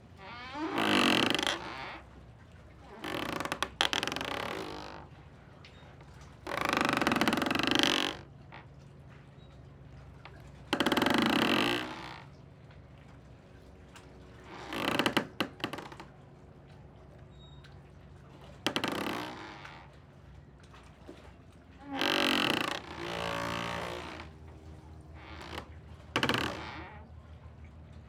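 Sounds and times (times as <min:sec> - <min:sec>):
dock creaking: 0:00.0 - 0:05.2, 0:06.4 - 0:08.7, 0:10.3 - 0:12.3, 0:13.8 - 0:16.3, 0:17.7 - 0:20.2, 0:21.1 - 0:27.4.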